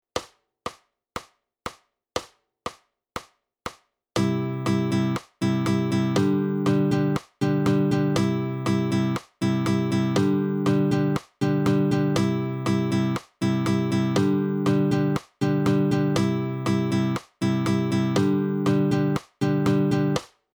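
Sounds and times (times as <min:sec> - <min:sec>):
strumming pattern: 0:04.2 - 0:20.2.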